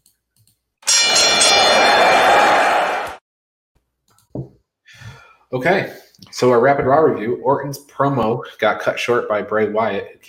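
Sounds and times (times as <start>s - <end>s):
bell ringing: 0.8s - 3.1s
speech: 5.5s - 10.2s.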